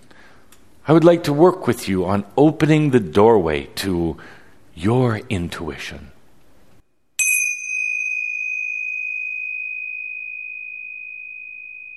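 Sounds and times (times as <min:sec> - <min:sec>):
speech: 0:00.8 - 0:06.2
chime ringing: 0:07.2 - 0:11.9.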